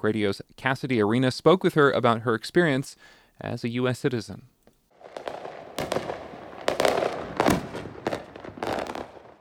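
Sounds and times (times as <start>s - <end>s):
speech: 0.0s - 4.5s
fireworks exploding: 4.9s - 9.3s.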